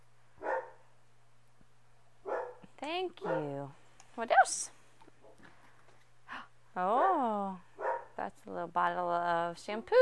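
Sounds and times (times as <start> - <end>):
faint steady hum in a quiet room: 0.0 - 10.0
dog barking: 0.4 - 0.8, 2.2 - 2.6, 3.2 - 3.6, 7.8 - 8.1
speech: 2.8 - 4.8, 6.8 - 7.6, 8.2 - 10.0.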